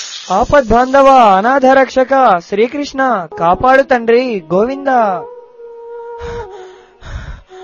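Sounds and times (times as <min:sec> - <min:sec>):
speech: 0:00.3 - 0:05.3
heavy out-of-breath panting after running in fright: 0:06.2 - 0:07.6.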